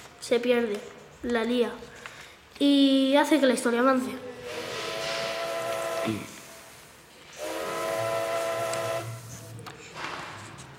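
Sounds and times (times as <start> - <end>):
speech: 0.3 - 2.0, 2.6 - 4.3, 6.0 - 6.3
steam train whistle: 4.4 - 9.5
steam train steady hiss: 4.4 - 9.6.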